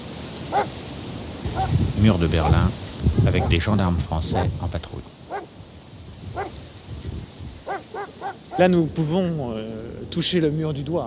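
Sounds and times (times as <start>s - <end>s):
steady hiss of noise: 0.0s - 11.0s
dog bark: 0.4s - 0.8s, 1.5s - 1.8s, 2.4s - 2.7s, 3.3s - 3.6s, 4.3s - 4.6s, 5.3s - 5.6s, 6.3s - 6.6s, 7.6s - 8.7s
speech: 0.5s - 0.8s, 1.6s - 5.4s, 8.6s - 11.0s.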